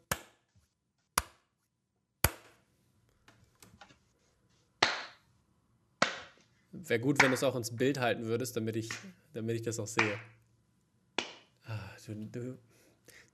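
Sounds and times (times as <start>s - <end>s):
hand claps to sync a recording: 4.8s - 5.2s, 10.0s - 10.3s, 11.2s - 11.5s
speech: 6.8s - 10.4s, 12.1s - 13.3s.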